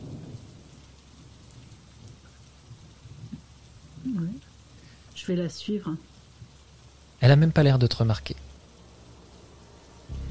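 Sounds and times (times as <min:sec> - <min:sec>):
steady rain falling in a forest: 0:00.0 - 0:10.2
speech: 0:05.2 - 0:06.1, 0:07.2 - 0:08.4
low rumbling: 0:08.6 - 0:10.2.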